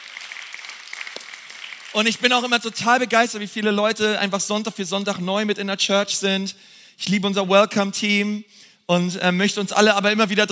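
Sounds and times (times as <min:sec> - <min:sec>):
audience applauding: 0:00.0 - 0:03.1
speech: 0:02.0 - 0:10.4.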